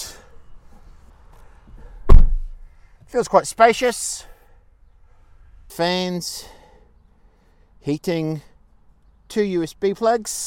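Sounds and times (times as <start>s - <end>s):
car rear passenger door closing: 2.0s - 2.6s
speech: 3.1s - 4.3s, 5.7s - 6.6s, 7.8s - 8.5s, 9.3s - 10.4s.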